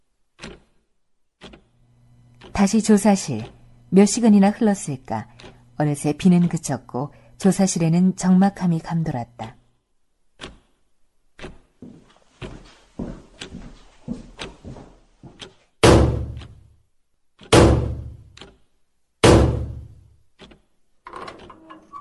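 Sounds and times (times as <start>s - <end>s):
speech: 2.6s - 9.6s
heavy booming thuds: 15.8s - 16.4s, 17.5s - 18.2s, 19.2s - 19.9s
door opening: 21.1s - 21.9s.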